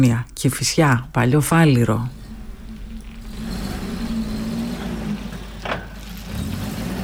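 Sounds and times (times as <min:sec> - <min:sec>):
speech: 0:00.0 - 0:02.2
car engine revving with a low growl: 0:00.0 - 0:07.0.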